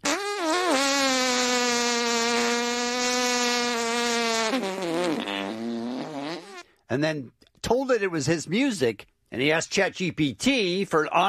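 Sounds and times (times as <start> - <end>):
fart sound effects: 0.0 - 6.6
speech: 6.9 - 11.2.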